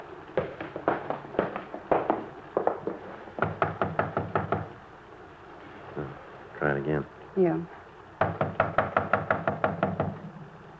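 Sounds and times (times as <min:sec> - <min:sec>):
firm knocks on a door: 0:00.4 - 0:04.7, 0:08.2 - 0:10.5
speech: 0:06.8 - 0:07.8.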